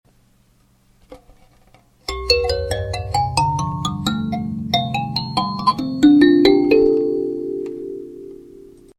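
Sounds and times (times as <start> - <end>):
kalimba in C: 2.1 - 8.8.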